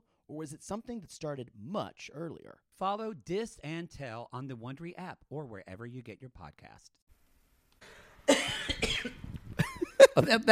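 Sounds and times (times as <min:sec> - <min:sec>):
speech: 0:00.3 - 0:07.0, 0:09.0 - 0:09.3, 0:10.2 - 0:10.5
person coughing: 0:08.3 - 0:09.2.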